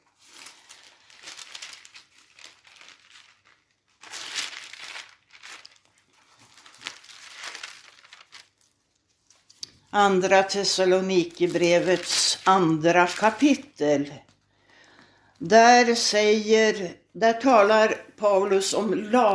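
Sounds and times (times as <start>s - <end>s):
thin paper pages of a bible rustling: 0.0s - 14.4s
speech: 10.0s - 14.3s, 15.4s - 19.3s.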